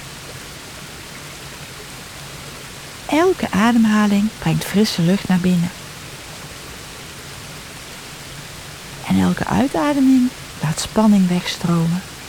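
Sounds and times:
waterfall rushing: 0:00.0 - 0:12.2
calm voice speaking softly: 0:03.1 - 0:05.8, 0:09.0 - 0:12.2
speech: 0:03.1 - 0:05.8, 0:09.2 - 0:12.1.

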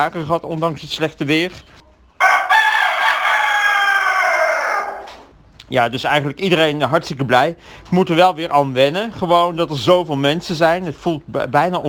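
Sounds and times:
speech: 0:00.0 - 0:01.8, 0:05.7 - 0:11.8
rooster crowing in a farm chicken coop in Breda: 0:02.2 - 0:05.3.

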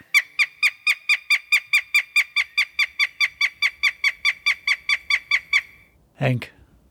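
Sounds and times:
female northern goshawk cackling calls: 0:00.0 - 0:05.9
speech: 0:06.2 - 0:06.6.

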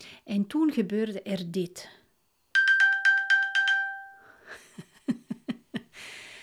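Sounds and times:
speech: 0:00.3 - 0:02.0
phone find-my-phone alarm beeping: 0:02.6 - 0:04.3.

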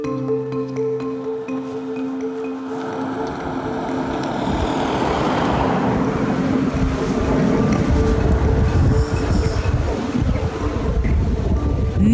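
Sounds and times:
wind turbine running: 0:00.1 - 0:12.0.

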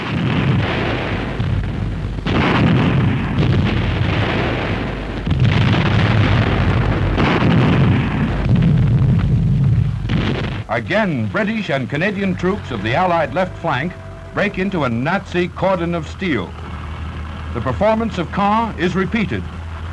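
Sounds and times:
heavy artillery barrage from self-propelled guns of the Canadian Army: 0:00.0 - 0:19.9
speech: 0:10.8 - 0:16.6, 0:17.5 - 0:19.6.

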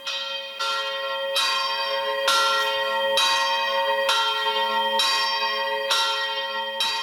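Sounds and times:
church tower bell ringing: 0:00.0 - 0:07.0.

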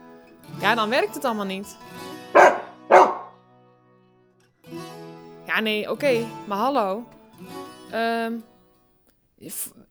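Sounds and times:
speech: 0:00.6 - 0:02.6, 0:05.6 - 0:08.5, 0:09.4 - 0:09.8
dog barking: 0:02.4 - 0:03.3.

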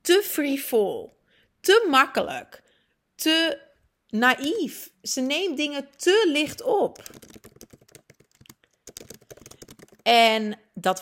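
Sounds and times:
speech: 0:00.1 - 0:02.6, 0:03.2 - 0:07.5, 0:10.1 - 0:11.0
rapid typing on a computer keyboard: 0:05.9 - 0:10.1.

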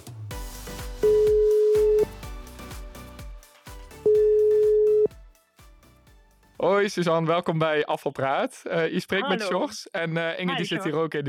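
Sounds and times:
soft rhythmic music bed: 0:00.0 - 0:06.7
telephone ringing tone: 0:01.0 - 0:02.1, 0:04.1 - 0:05.1
speech: 0:06.8 - 0:11.2.

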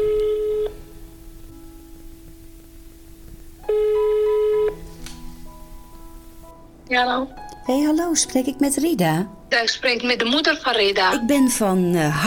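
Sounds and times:
telephone ringback tone: 0:00.0 - 0:00.8, 0:03.6 - 0:04.8
speech: 0:06.9 - 0:12.2.

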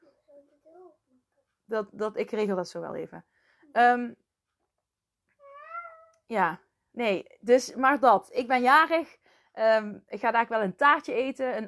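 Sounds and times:
speech: 0:01.7 - 0:04.2, 0:06.3 - 0:11.6
cat meowing: 0:05.4 - 0:06.2.

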